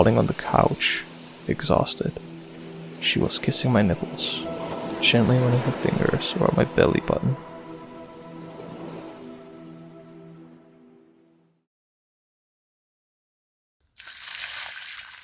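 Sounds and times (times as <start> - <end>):
speech: 0.0 - 2.3, 3.0 - 7.5
steady tonal drone: 0.0 - 11.6
cold water thrown from an old tin bucket onto a person: 14.0 - 15.2.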